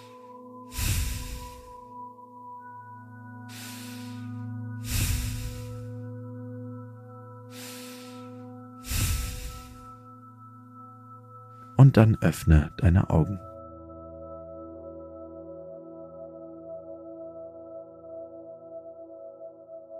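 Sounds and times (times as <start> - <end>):
slow deep breaths in and out through the nose in a relaxation exercise: 0.0 - 2.0, 3.4 - 6.3, 7.4 - 10.2
soft steady musical drone: 0.0 - 19.9
speech: 11.8 - 13.5.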